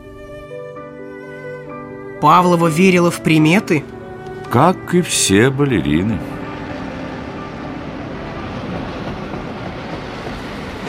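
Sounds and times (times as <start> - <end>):
speech: 2.2 - 6.4
train rolling along rails near Dijon France in winter 1931: 2.6 - 10.8.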